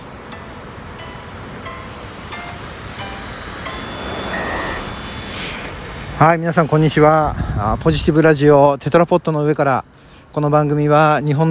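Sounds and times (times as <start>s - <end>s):
traffic noise near a train station: 0.0s - 11.4s
passing whoosh: 1.0s - 6.3s
short electronic beeps and tones chiming: 2.3s - 6.2s
speech: 6.2s - 11.4s.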